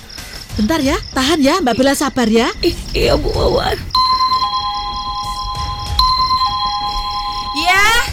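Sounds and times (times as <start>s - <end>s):
speech: 0.6s - 3.9s
faint noise: 0.6s - 5.8s
electronic doorbell chime tune at a gate: 4.0s - 8.0s.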